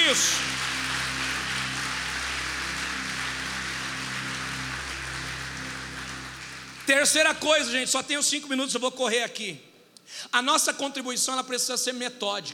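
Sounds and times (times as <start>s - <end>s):
low sustained hum: 0.0s - 7.4s
church audience applauding: 0.0s - 7.9s
speech: 0.2s - 0.5s, 6.9s - 12.5s.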